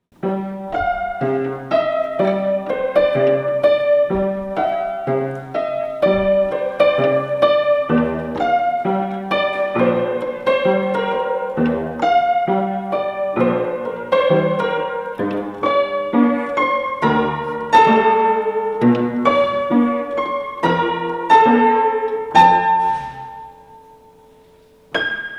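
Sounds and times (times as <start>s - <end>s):
piano playing in a hall: 0.0s - 25.3s.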